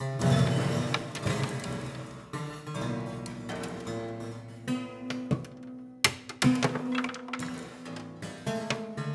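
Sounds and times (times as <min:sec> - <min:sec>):
piano being destroyed: 0:00.1 - 0:02.3, 0:02.9 - 0:09.0
marbles: 0:06.1 - 0:08.1.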